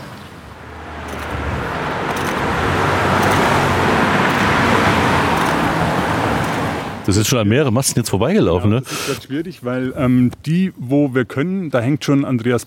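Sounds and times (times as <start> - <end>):
car passing by on street: 0.0 - 7.1
speech: 7.1 - 12.6.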